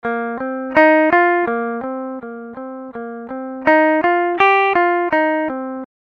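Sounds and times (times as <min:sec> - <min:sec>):
dry guitar: 0:00.0 - 0:05.9.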